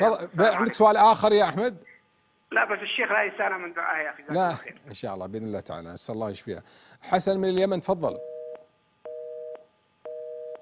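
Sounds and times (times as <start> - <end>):
speech: 0.0 - 1.9, 2.5 - 8.3
telephone busy tone after a call drops: 8.2 - 10.6.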